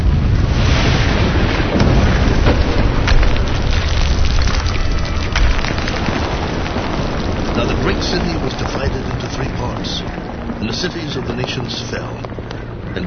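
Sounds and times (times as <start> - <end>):
deep heavy earthquake rumble: 0.0 - 13.0
splintering crashes and cracking debris: 0.6 - 10.5.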